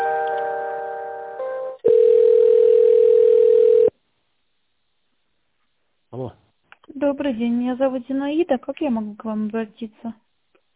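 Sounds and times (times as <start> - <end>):
telephone line tones while a call is transferred: 1.4 - 3.9
speech: 7.1 - 10.2.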